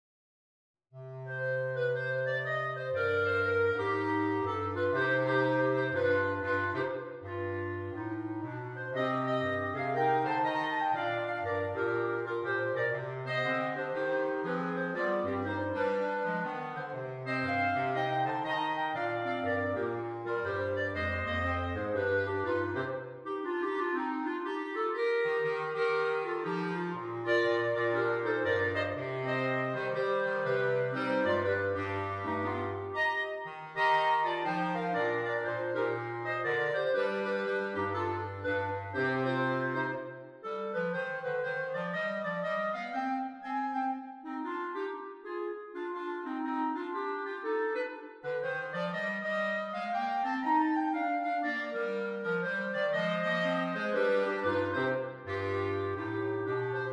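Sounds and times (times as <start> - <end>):
clarinet quartet playing: 1.0 - 56.9.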